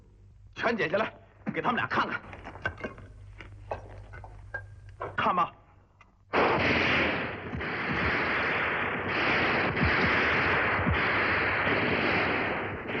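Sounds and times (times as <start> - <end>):
speech: 0.6 - 2.3, 5.2 - 5.6
rifle gunfire in a battle against advancing enemy troops: 6.4 - 12.9.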